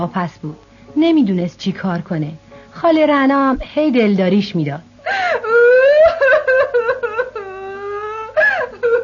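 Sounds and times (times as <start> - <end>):
speech: 0.0 - 5.4
worried mother crying and wailing at home: 5.0 - 9.0.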